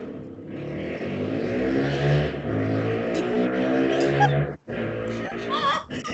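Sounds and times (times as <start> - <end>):
motorcycle engine revving while passing on a wheelie: 0.0 - 6.0
laughter: 3.8 - 4.5, 5.1 - 6.1.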